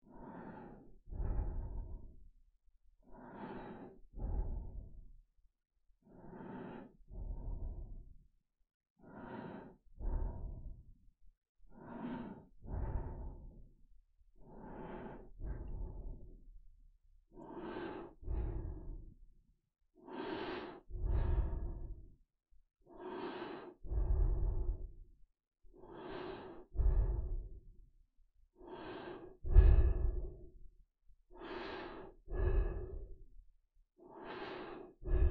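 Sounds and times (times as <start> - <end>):
creepy low breathing: 0.0 - 2.4, 3.0 - 5.3, 6.0 - 8.4, 9.0 - 19.4, 20.0 - 35.2.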